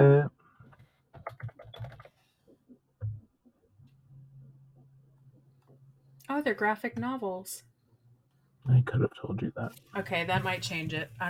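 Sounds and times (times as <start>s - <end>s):
low steady hum: 0.0s - 0.3s, 3.8s - 11.2s
typing on a loud clicky mechanical computer keyboard: 1.1s - 2.2s
speech: 6.4s - 7.7s, 8.7s - 11.2s.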